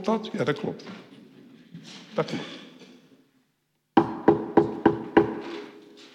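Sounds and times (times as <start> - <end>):
speech: 0.0 - 1.2, 1.8 - 2.6
firm knocking on a wooden door: 4.0 - 5.4.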